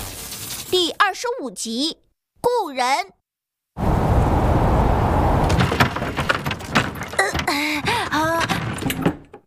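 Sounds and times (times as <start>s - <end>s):
speech: 0.7s - 3.2s, 7.5s - 8.4s
rushing wind of a sandstorm: 3.8s - 5.9s
door shut against a sandstorm with knocks and thuds: 5.5s - 9.4s.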